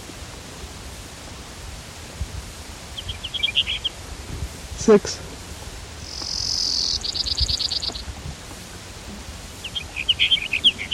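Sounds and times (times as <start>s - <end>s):
Brewer's sparrow singing high buzzy trills: 3.0s - 4.0s, 6.0s - 8.1s, 9.6s - 10.9s
speech: 4.8s - 5.2s.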